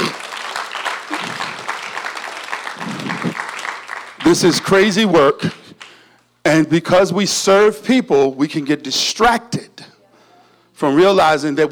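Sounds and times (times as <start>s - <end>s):
church audience applause: 0.0s - 6.0s
speech: 4.3s - 5.6s, 6.6s - 9.7s, 10.8s - 11.7s.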